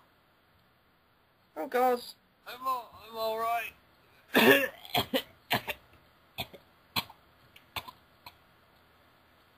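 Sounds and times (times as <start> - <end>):
speech: 1.7 - 5.1
person faking exaggerated coughs: 4.3 - 5.8.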